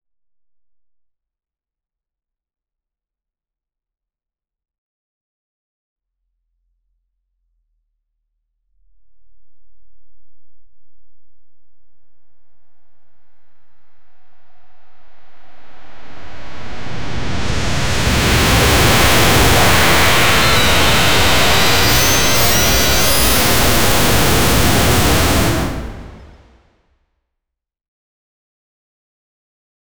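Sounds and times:
fantasy mana charging sound: 0:16.2 - 0:26.5.

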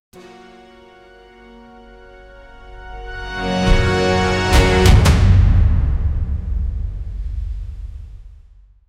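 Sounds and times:
orchestral hit: 0:02.5 - 0:08.8.

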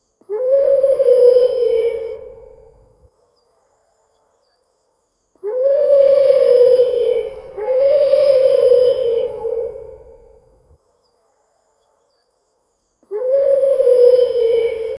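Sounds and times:
wild owl calling: 0:00.3 - 0:02.8, 0:05.4 - 0:10.4, 0:13.1 - 0:14.9.

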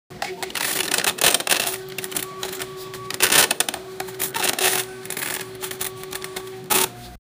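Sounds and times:
cash register cha-ching: 0:00.1 - 0:07.2.

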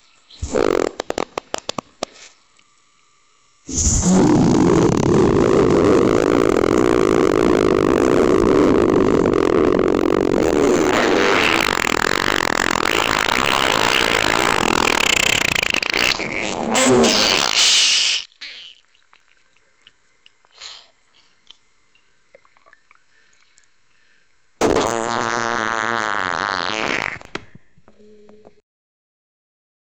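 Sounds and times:
loud bubbling: 0:03.7 - 0:18.0, 0:24.6 - 0:27.3.

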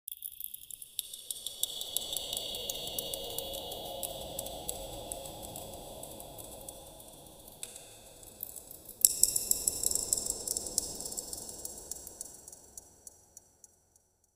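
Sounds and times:
magical cave ambience: 0:00.3 - 0:13.4.

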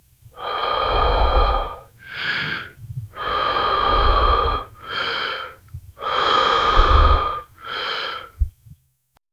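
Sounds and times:
man breathing: 0:00.1 - 0:08.6.

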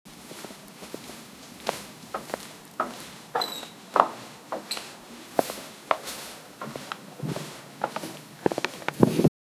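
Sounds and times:
footsteps on dusty village ground: 0:00.1 - 0:09.2.

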